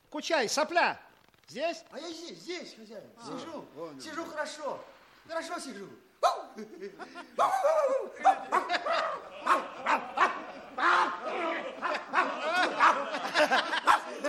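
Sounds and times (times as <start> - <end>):
speech: 0.2 - 10.0
person imitating a dog with yapping barks: 6.2 - 6.6, 7.4 - 11.2
chuckling and laughter: 6.5 - 14.2.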